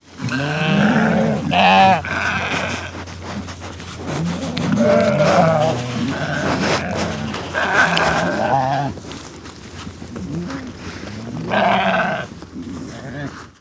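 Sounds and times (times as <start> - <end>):
sheep bleating: 0.2 - 3.0, 4.4 - 9.0, 11.3 - 12.3.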